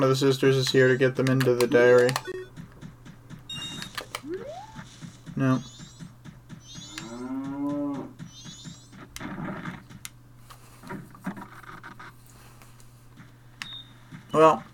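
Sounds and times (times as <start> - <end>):
speech: 0.0 - 2.4, 5.4 - 5.7
steady low hum: 0.0 - 14.7
cattle mooing inside a barn: 7.0 - 8.1
rustling and scraping: 9.4 - 13.4.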